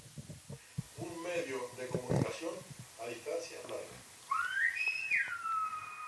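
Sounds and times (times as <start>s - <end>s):
speech: 1.4s - 4.1s
whistled Silbo language greeting: 4.3s - 6.0s.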